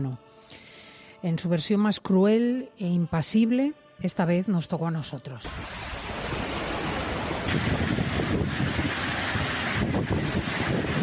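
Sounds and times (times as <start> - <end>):
speech: 1.2 - 6.0, 7.5 - 8.8
storm floodwaters rushing through a town during a cut-off low storm: 5.5 - 11.0.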